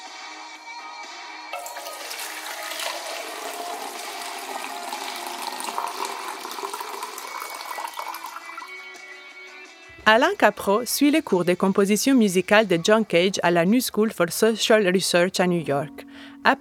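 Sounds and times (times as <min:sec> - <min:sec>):
water poured from one container into another: 0:01.6 - 0:08.7
speech: 0:10.1 - 0:16.5.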